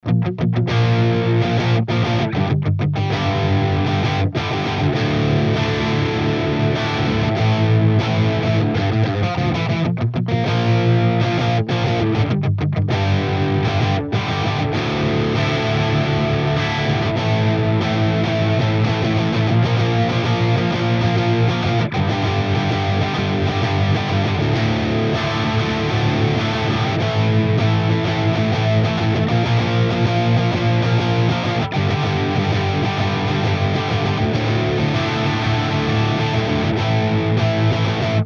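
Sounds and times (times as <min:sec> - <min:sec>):
electric guitar: 0:00.0 - 0:38.2.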